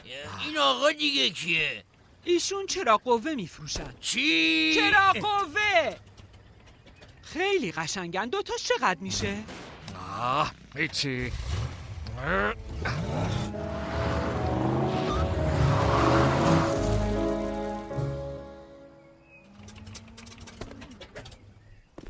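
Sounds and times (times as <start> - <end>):
speech: 0.1 - 6.1, 7.3 - 9.6, 10.2 - 11.6, 12.2 - 13.4
station wagon driving past with broad road noise: 12.9 - 18.8.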